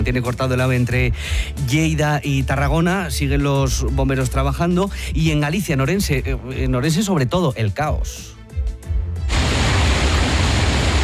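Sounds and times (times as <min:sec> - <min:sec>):
speech: 0:00.0 - 0:08.4
heavy rain from a storm: 0:09.3 - 0:11.0.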